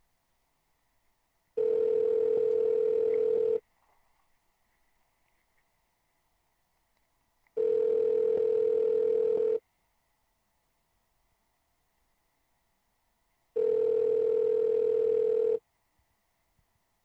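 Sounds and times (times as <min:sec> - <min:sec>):
faint hum: 0:00.0 - 0:17.0
telephone ringback tone while dialing out: 0:01.6 - 0:03.6, 0:07.6 - 0:09.6, 0:13.6 - 0:15.6.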